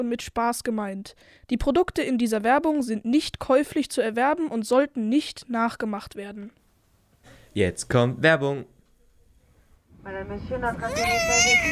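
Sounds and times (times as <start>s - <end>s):
speech: 0.0s - 6.6s, 7.6s - 8.8s, 10.0s - 11.7s
baby crying on a flight: 10.8s - 11.7s.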